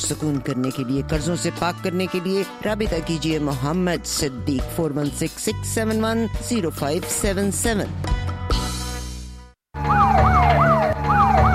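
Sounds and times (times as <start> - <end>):
speech: 0.1 - 8.6
police car siren wailing: 9.8 - 11.5.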